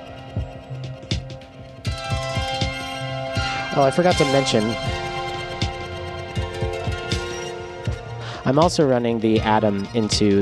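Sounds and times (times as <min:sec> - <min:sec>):
sustained synth chord humming: 0:00.0 - 0:08.6
irregular thumping pulses and quick downward blips: 0:03.4 - 0:08.1
speech: 0:03.8 - 0:05.0, 0:08.5 - 0:10.4.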